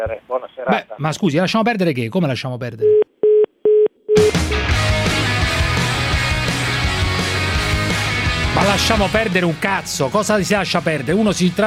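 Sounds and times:
speech: 0:00.0 - 0:03.1, 0:08.7 - 0:11.6
telephone line tone beeps after a caller hangs up: 0:02.8 - 0:04.3
dense music: 0:04.3 - 0:11.6.

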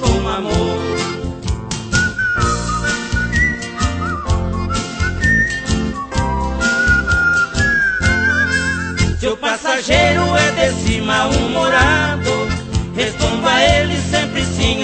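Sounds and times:
lively rhythmic backing music: 0:00.0 - 0:14.8
person whistling a melody in a high clear wavering tone: 0:01.9 - 0:09.2.

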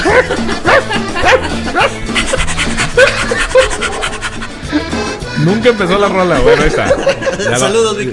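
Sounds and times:
dog barking with yips and whimpering tones: 0:00.0 - 0:04.4
laughter: 0:00.0 - 0:05.0, 0:06.2 - 0:08.1
speech: 0:00.2 - 0:04.1, 0:05.4 - 0:08.1
scratching and rubbing noises: 0:01.7 - 0:04.7.

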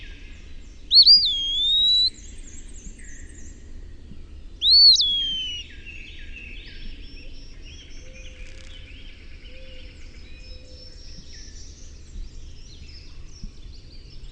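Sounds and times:
faint background hum: 0:00.0 - 0:14.3
Eastern wood pewee Contopus virens slurred whistled calls: 0:00.9 - 0:02.1, 0:04.6 - 0:05.6.

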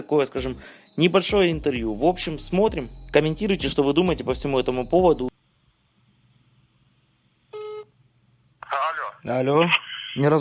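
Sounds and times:
speech: 0:00.0 - 0:05.3, 0:09.2 - 0:10.3
telephone ringback tone while placing a call: 0:07.6 - 0:07.9.

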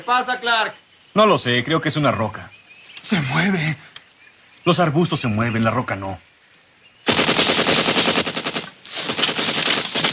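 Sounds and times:
speech: 0:00.0 - 0:03.9, 0:04.6 - 0:06.3
machine gun fire in a Vietnam War scene: 0:07.1 - 0:10.1.

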